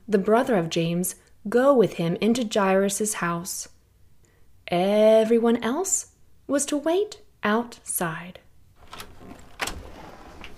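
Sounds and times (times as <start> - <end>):
speech: 0.1 - 3.7, 4.7 - 9.1
door of a home opening: 8.8 - 10.5.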